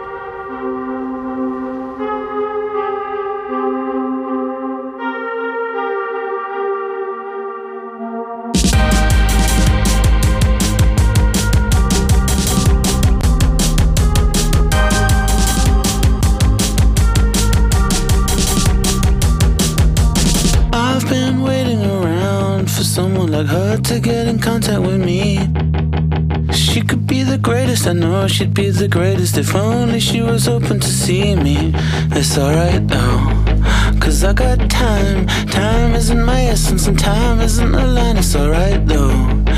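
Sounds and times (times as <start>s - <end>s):
sustained synth chords: 0.0s - 21.6s
band playing a new pop song with drums and bass: 8.6s - 25.5s, 26.5s - 39.5s
speech: 28.3s - 33.4s, 34.1s - 39.4s.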